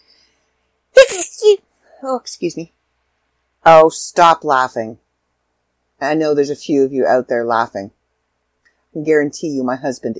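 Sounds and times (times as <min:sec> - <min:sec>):
small high-pitched sneeze: 0:01.0 - 0:01.6
speech: 0:01.5 - 0:02.8, 0:03.6 - 0:05.0, 0:06.0 - 0:08.0, 0:09.0 - 0:10.1.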